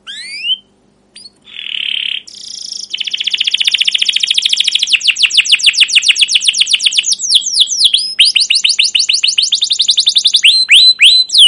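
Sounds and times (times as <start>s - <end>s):
Atlantic canary singing in the cuit cuit and ngerol rolling style: 0.0s - 11.4s.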